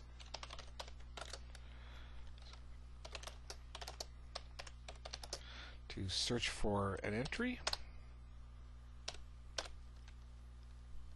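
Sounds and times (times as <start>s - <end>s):
typing on a computer keyboard: 0.0s - 1.6s, 2.4s - 5.4s, 9.1s - 10.2s
low steady hum: 0.0s - 11.1s
speech: 6.0s - 7.7s.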